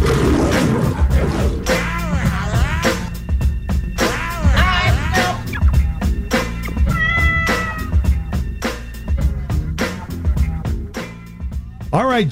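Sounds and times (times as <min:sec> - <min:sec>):
lion roaring and snarling: 0:00.0 - 0:03.1
punchy music jingle with steady drum hits: 0:01.7 - 0:12.0.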